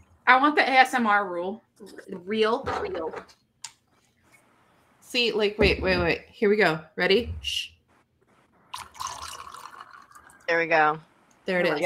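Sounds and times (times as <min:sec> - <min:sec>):
speech: 0:00.3 - 0:03.4, 0:05.1 - 0:07.8, 0:10.5 - 0:11.8
Sprite soda pouring into a glass: 0:08.7 - 0:10.5.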